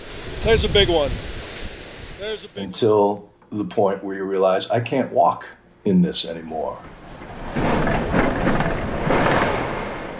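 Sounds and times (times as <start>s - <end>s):
hurricane-force wind roaring as Hurricane Ian arrives in Florida: 0.0s - 3.2s, 6.6s - 10.1s
speech: 0.4s - 1.3s, 2.2s - 7.0s.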